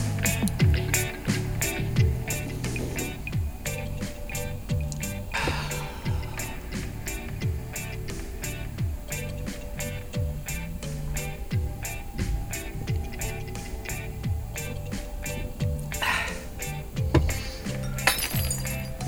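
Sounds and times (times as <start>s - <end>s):
low tonal background: 0.0s - 19.0s
dishes and glassware clinking and rattling as a tomcat walks between them: 17.2s - 19.0s.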